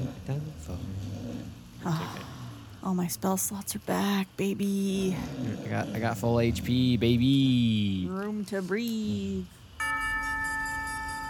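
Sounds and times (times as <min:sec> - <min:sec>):
speech: 0:02.9 - 0:09.6
large tower bell chiming midnight: 0:09.8 - 0:11.2.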